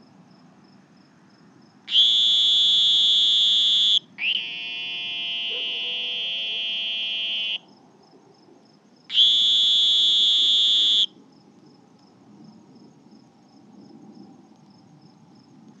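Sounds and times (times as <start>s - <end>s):
faint low background noise: 0.0s - 15.7s
two Sonoran green toads trilling: 1.9s - 7.7s, 9.1s - 11.2s.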